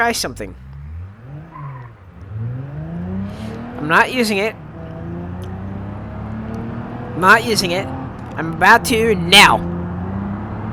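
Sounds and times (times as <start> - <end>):
speech: 0.0 - 0.6, 3.8 - 4.6, 7.2 - 9.7
car engine over-revved hard: 0.4 - 10.7
tire-like squeal: 0.6 - 3.8.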